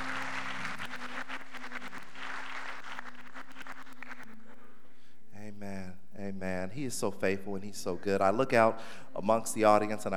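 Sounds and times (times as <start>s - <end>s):
church congregation clapping hands: 0.0s - 4.4s
speech: 6.8s - 10.1s.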